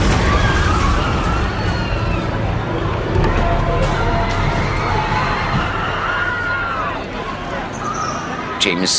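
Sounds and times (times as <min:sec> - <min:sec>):
crashing noise: 0:00.0 - 0:06.2
crowd of protesters shouting and screaming: 0:00.0 - 0:08.9.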